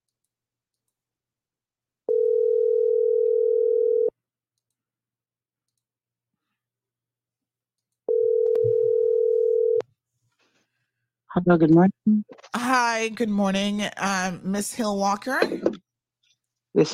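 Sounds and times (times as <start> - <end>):
ringback tone of an outgoing telephone call: 2.1 - 4.1, 8.1 - 9.8
speech: 11.4 - 15.8, 16.8 - 16.9.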